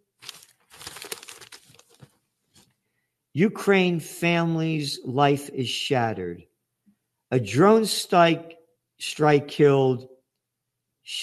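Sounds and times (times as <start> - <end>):
newspaper pages rustling as they are handled: 0.0 - 2.8
speech: 3.4 - 6.5, 7.3 - 10.2.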